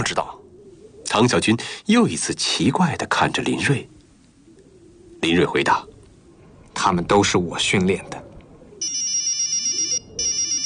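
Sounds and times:
speech: 0.0s - 0.4s, 1.1s - 4.0s, 5.2s - 5.9s, 6.8s - 8.3s
mobile phone ringtone of rapid bright electronic pulses: 8.8s - 10.6s.

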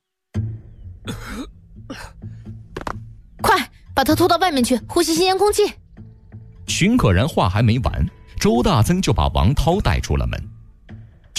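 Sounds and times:
man coughing after choking on sprayed gas: 1.1s - 2.2s
speech: 1.1s - 2.2s, 4.0s - 5.8s, 6.7s - 10.5s.

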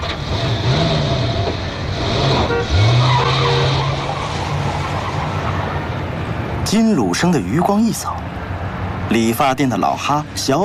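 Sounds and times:
car engine revving as it pulls away: 0.0s - 6.1s
steady road roar: 0.0s - 10.6s
speech: 6.7s - 8.4s, 9.1s - 10.6s.

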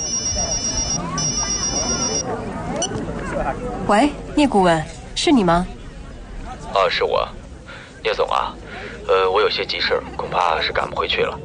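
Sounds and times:
mobile phone ringing at a banquet hall entrance: 0.0s - 2.2s
speech: 0.0s - 11.4s
speech: 3.6s - 5.8s, 6.8s - 7.4s, 8.0s - 11.4s.

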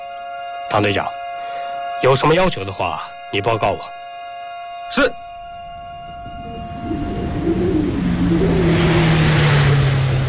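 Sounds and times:
speech: 0.7s - 1.2s, 2.0s - 4.0s, 4.9s - 5.2s
paratrooper assault vehicle engine roar speeding uphill: 6.0s - 10.2s.

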